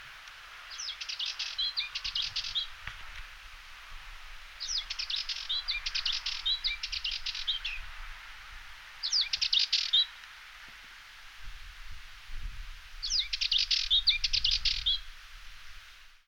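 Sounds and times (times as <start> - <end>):
spectacled warbler singing: 0.7 - 2.8, 4.6 - 7.9, 9.0 - 10.1, 13.0 - 15.1.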